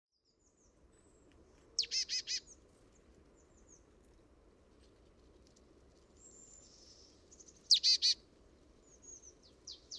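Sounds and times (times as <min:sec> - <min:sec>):
marsh tit calling in buzzy rapid notes: 0:01.8 - 0:02.6, 0:07.7 - 0:08.2.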